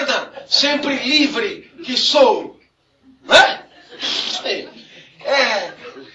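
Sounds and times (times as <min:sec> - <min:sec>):
laughter: 0:00.0 - 0:01.1, 0:03.2 - 0:06.1
speech: 0:00.5 - 0:02.5, 0:03.2 - 0:05.7
single sharp sneeze: 0:03.3 - 0:04.5.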